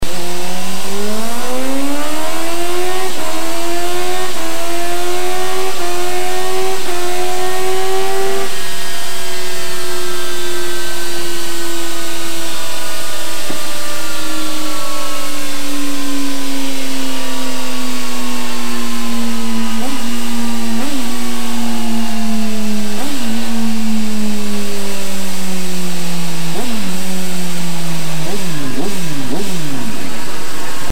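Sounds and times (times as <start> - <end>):
Honda 929RR motorcycle with aftermarket exhaust pipe: 0.0 - 30.9.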